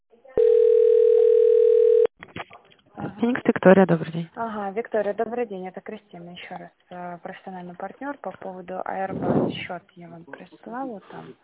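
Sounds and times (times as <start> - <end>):
telephone ringback tone heard over the line: 0.4 - 2.1
speech: 3.2 - 11.4.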